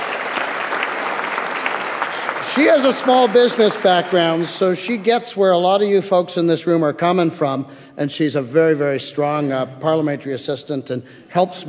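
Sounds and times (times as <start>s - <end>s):
room full of people applauding: 0.0s - 5.0s
speech: 2.6s - 11.6s.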